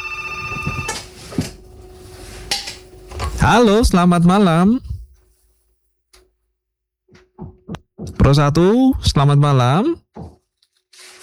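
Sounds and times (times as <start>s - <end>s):
telephone on a call-in line ringing with an electronic trill: 0.0s - 2.0s
speech: 3.4s - 4.9s, 8.2s - 10.0s.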